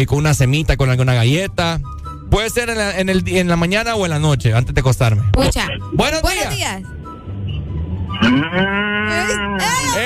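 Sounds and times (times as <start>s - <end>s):
speech: 0.0s - 7.0s, 8.2s - 10.0s
low rumbling background: 0.0s - 10.0s
cow mooing: 8.2s - 10.0s.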